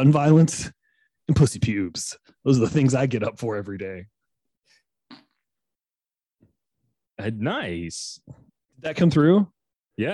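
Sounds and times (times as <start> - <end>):
speech: 0.0 - 4.1, 7.2 - 10.1
fart: 5.1 - 5.4.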